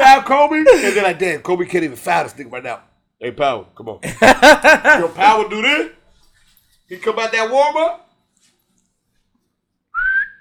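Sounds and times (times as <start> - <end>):
speech: 0.3 - 6.0, 6.9 - 8.0
laughter: 4.0 - 5.6
person whistling with lips imitating a referee's whistle: 9.9 - 10.4.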